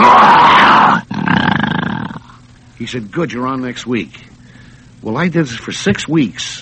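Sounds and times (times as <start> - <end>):
person imitating the growl of a cartoon bear: 0.0 - 2.4
speech: 2.9 - 4.4, 5.0 - 6.6.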